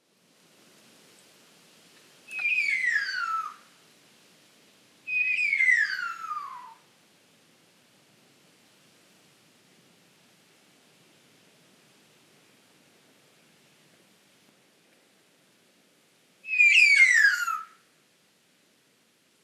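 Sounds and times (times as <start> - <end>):
satin bowerbird Ptilonorhynchus violaceus: 2.3 - 3.6, 5.1 - 6.8, 16.5 - 17.8.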